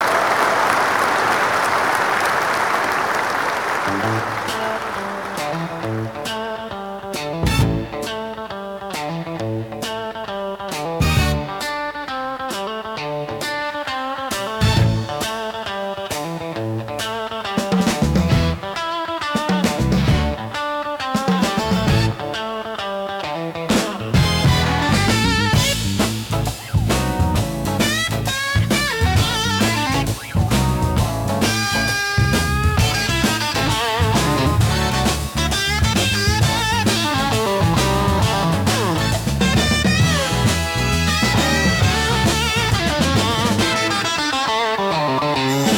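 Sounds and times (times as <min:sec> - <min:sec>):
applause: 0:00.0 - 0:06.6
six-string blues guitar: 0:03.8 - 0:45.7.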